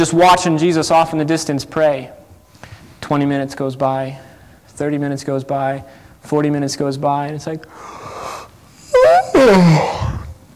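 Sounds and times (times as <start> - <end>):
speech: 0.0 - 2.2, 3.1 - 8.3, 9.0 - 10.2
voice imitating a yawn: 7.9 - 10.4.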